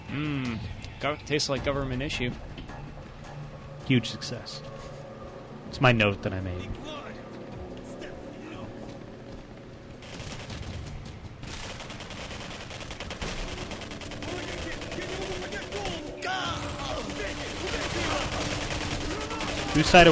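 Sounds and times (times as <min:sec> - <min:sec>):
speech: 0:00.1 - 0:02.6, 0:03.9 - 0:04.7, 0:05.7 - 0:07.0, 0:19.8 - 0:20.0
video game gunfire: 0:10.0 - 0:20.0.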